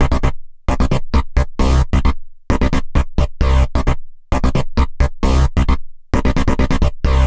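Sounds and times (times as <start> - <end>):
house bass arpeggio in C major: 0.0 - 7.2.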